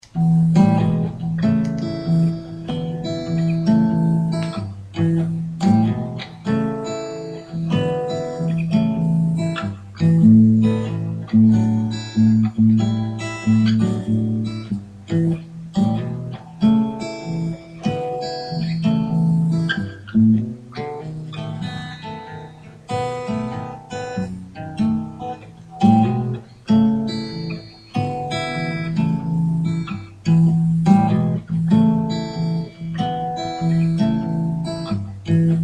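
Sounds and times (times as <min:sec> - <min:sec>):
acoustic blues groove in E: 0:00.0 - 0:35.6.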